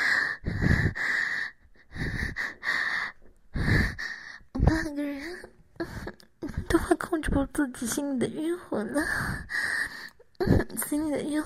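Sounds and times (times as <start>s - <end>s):
heavy raspy panting breaths from two people: 0.0s - 6.7s, 9.0s - 10.6s
speech: 7.6s - 9.6s, 10.4s - 11.4s.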